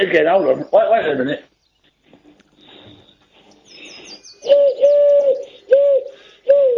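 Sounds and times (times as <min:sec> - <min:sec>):
speech: 0:00.0 - 0:01.5, 0:04.4 - 0:05.4
faint chirps: 0:00.3 - 0:06.6
wood pigeon call blown through cupped hands: 0:01.8 - 0:06.7.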